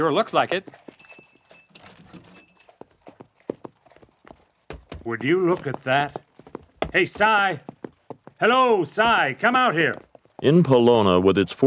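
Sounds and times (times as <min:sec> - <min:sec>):
speech: 0:00.0 - 0:01.0, 0:05.0 - 0:06.2, 0:06.9 - 0:07.7, 0:08.4 - 0:11.6
horse hooves clip-clopping at a walking pace in Bologna: 0:00.0 - 0:11.6
faint metallic jingle: 0:00.6 - 0:04.9.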